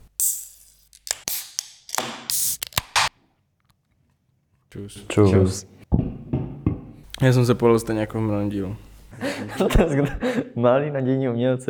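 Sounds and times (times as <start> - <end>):
beer cans being cracked open: 0.0 - 3.1
speech: 4.7 - 5.8, 7.2 - 11.6
laughter: 9.1 - 10.6.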